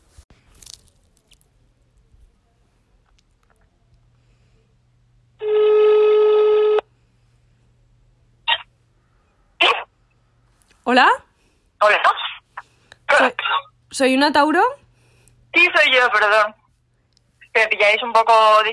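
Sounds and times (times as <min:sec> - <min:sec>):
faint low hum: 0:00.0 - 0:18.7
buzzy telephone ringback tone after dialing a call: 0:05.4 - 0:06.8
speech: 0:10.9 - 0:11.2, 0:14.0 - 0:14.8, 0:15.6 - 0:16.6, 0:17.6 - 0:18.7.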